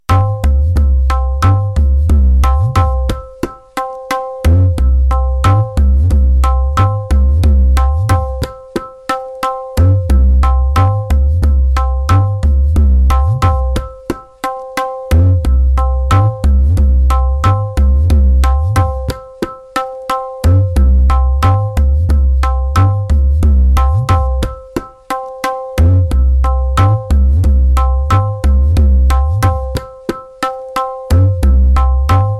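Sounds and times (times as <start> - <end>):
tintaal rhythm in drut tempo at 180 bpm: 0.0 - 32.3.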